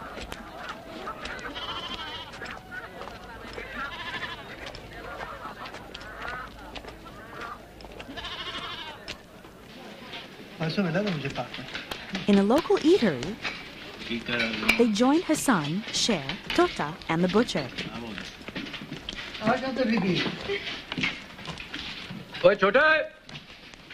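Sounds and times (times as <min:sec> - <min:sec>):
murmuring voices of street crowd: 0:00.0 - 0:21.0
goats bleating in market street: 0:00.5 - 0:06.6, 0:07.2 - 0:09.2
speech: 0:10.7 - 0:13.5, 0:14.1 - 0:18.0, 0:19.6 - 0:20.8, 0:22.4 - 0:23.1.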